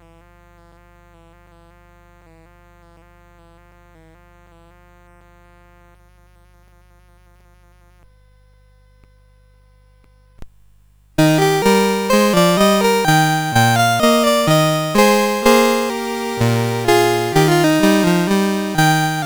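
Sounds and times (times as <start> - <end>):
march music: 11.2 - 19.2.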